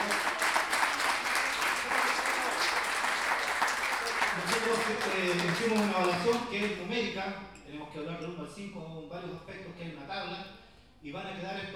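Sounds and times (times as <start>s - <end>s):
audience applause at an improvised-verse tournament: 0.0s - 6.8s
speech: 4.6s - 11.7s.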